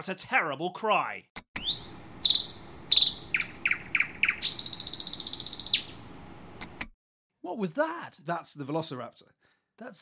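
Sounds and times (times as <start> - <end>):
speech: 0.0 - 1.4, 7.5 - 9.9
nightingale singing: 1.6 - 6.0.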